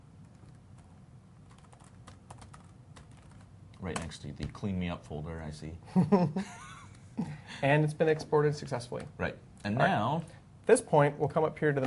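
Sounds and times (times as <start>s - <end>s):
steady hiss: 0.0s - 11.8s
keys tapped on a computer keyboard while a password is entered: 0.2s - 4.1s
speech: 3.8s - 11.8s.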